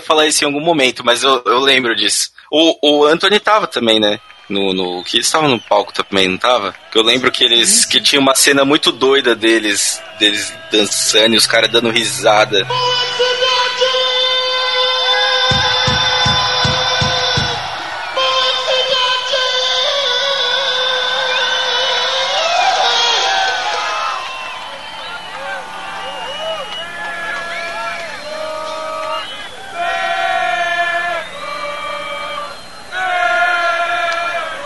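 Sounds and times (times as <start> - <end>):
speech: 0.1 - 14.0
huge concert crowd chanting a football cheer: 9.0 - 34.6.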